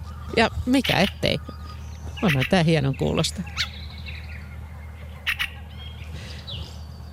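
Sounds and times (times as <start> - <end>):
steady low outdoor rumble: 0.0 - 7.1
speech: 0.3 - 1.6, 2.2 - 3.7
fieldfare calling with harsh chattering squawks: 0.3 - 6.7.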